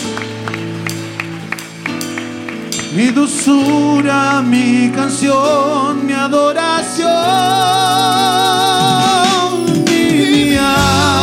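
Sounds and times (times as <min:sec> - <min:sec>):
audience clapping together in a steady rhythm: 0:00.0 - 0:07.4
sustained music with held organ-like tones: 0:00.0 - 0:11.2
singing: 0:02.9 - 0:11.2
speech: 0:02.9 - 0:11.2.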